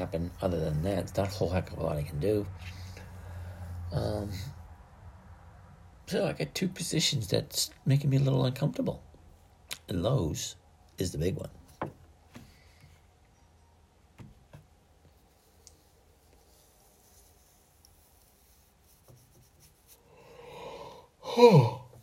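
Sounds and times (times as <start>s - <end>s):
speech: 0.0s - 2.8s, 3.9s - 4.6s, 6.1s - 9.1s, 9.9s - 12.0s, 21.4s - 21.8s
person yawning: 20.4s - 22.0s.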